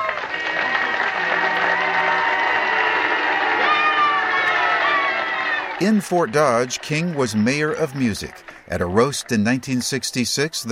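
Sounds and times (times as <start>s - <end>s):
large crowd of fans in Oskaloosa cheering and shouting: 0.0s - 10.6s
speech: 5.8s - 10.6s.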